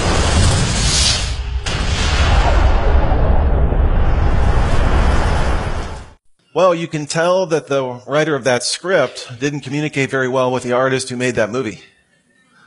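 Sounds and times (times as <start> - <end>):
massive roaring explosion depicting the Big Bang: 0.0 - 6.2
speech: 6.6 - 11.9.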